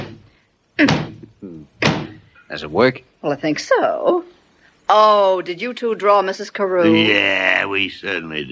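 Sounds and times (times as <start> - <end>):
object banged against a wall with short ringing tail: 0.8 - 2.3
speech: 2.5 - 4.3, 4.9 - 8.5.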